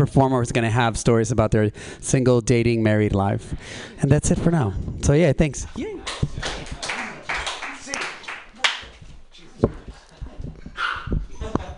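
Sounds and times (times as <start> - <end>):
speech: 0.0 - 6.5
dogs barking and yipping: 10.8 - 11.2.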